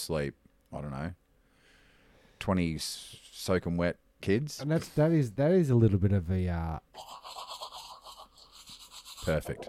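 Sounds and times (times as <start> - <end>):
speech: 0.0 - 1.2, 2.4 - 7.4, 9.2 - 9.6
toothbrush scrubbing back and forth: 7.0 - 9.6.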